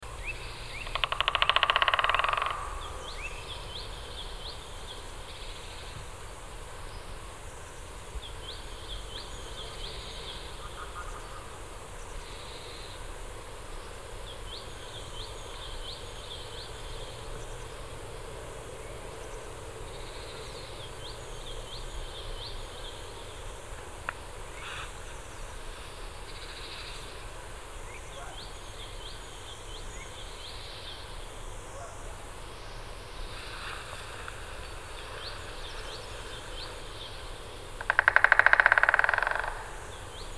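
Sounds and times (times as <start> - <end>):
white-backed woodpecker call: 0.3 - 3.5, 37.8 - 40.2.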